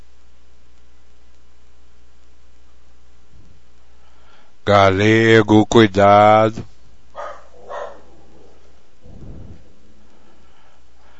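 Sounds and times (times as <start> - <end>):
steady hiss: 0.0 - 11.1
speech: 4.7 - 6.7
large dog barking: 7.1 - 8.7
deep rumbling thud: 9.1 - 9.7.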